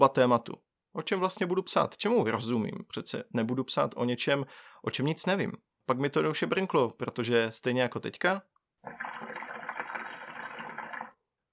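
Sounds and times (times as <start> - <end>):
speech: 0.0 - 9.1
hookah water pipe bubbling while smoked: 8.8 - 11.2.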